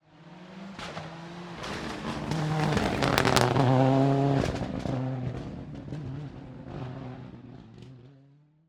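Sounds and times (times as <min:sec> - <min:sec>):
rally car passing by on a straight: 0:00.1 - 0:08.2.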